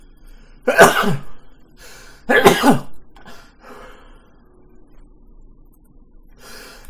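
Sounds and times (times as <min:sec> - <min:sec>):
person coughing: 0:00.7 - 0:01.4, 0:02.3 - 0:03.0.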